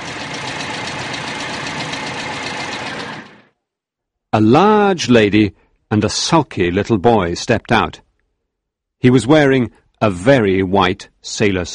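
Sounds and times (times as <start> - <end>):
motor car engine idling: 0.0 - 3.5
speech: 4.4 - 8.0, 9.0 - 11.7.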